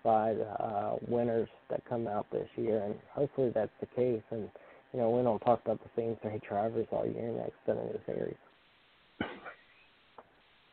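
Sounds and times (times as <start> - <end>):
speech: 0.0 - 8.5
person coughing after choking on a cough drop: 9.2 - 9.7.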